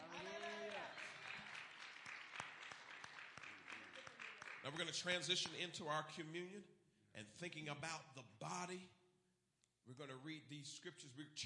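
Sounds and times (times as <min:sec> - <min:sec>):
crowd clapping hands: 0:00.0 - 0:05.7
speech: 0:04.6 - 0:09.0, 0:09.8 - 0:11.4.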